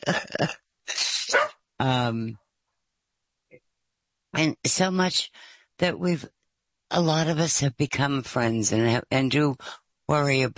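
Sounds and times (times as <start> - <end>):
speech: 0.0 - 0.6, 1.8 - 2.4, 4.4 - 10.5
dog barking and yowling: 1.3 - 1.5.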